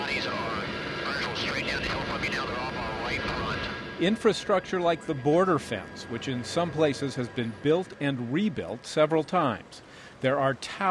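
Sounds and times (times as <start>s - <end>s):
wavering whining tones: 0.0s - 9.9s
Black Hawk helicopter engine and rotor roaring overhead: 0.0s - 10.8s
speech: 4.0s - 10.8s.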